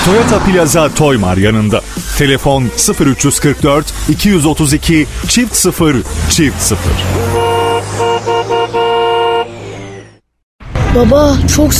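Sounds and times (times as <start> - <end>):
speech: 0.0 - 7.4, 11.0 - 11.7
car horns honking in slow traffic: 6.3 - 10.2.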